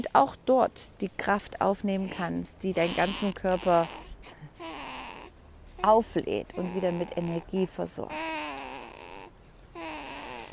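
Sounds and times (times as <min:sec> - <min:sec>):
speech: 0:00.0 - 0:04.4, 0:05.8 - 0:08.3
sleeping baby's soft whimpering coos: 0:02.8 - 0:07.4, 0:08.1 - 0:10.5.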